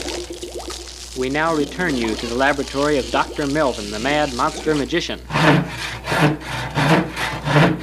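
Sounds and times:
speech: 0:01.2 - 0:06.6
hand saw sawing through wood: 0:01.7 - 0:07.7.

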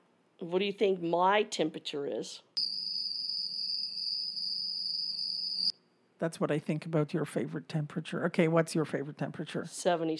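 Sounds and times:
speech: 0:00.4 - 0:02.7, 0:06.2 - 0:10.1
crickets chirping sound effect: 0:02.6 - 0:05.7.

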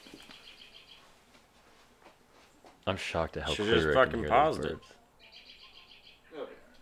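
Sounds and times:
bird chirps outdoors: 0:00.0 - 0:01.1, 0:05.2 - 0:06.3
speech: 0:02.9 - 0:05.0.

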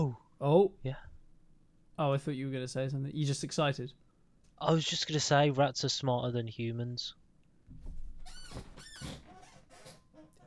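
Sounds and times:
speech: 0:00.4 - 0:01.1, 0:02.0 - 0:04.0, 0:04.6 - 0:07.9
chair creaking as someone leans back: 0:07.9 - 0:10.4.

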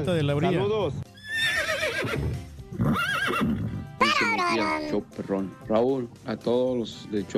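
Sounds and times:
speech: 0:00.0 - 0:01.1, 0:02.0 - 0:03.6, 0:04.4 - 0:07.3
horse neighing: 0:00.9 - 0:04.3.

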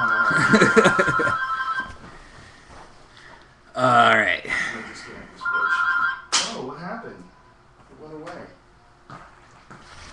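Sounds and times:
phone ringtone: 0:00.0 - 0:02.0, 0:05.4 - 0:06.3
people laughing: 0:00.3 - 0:01.4
speech: 0:00.3 - 0:01.4.

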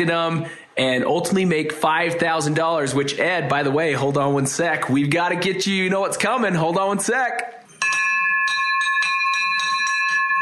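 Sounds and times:
speech: 0:00.0 - 0:07.6
bright celebration bell ringing: 0:07.7 - 0:10.4.

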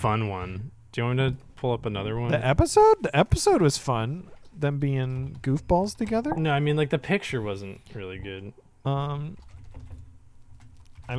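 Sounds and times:
speech: 0:00.0 - 0:09.5
typing on a computer keyboard: 0:09.0 - 0:11.1.

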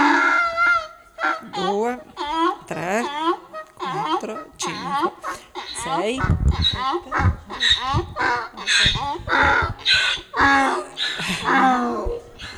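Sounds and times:
donkey braying in pain: 0:00.0 - 0:12.5
laughter: 0:00.0 - 0:12.5.

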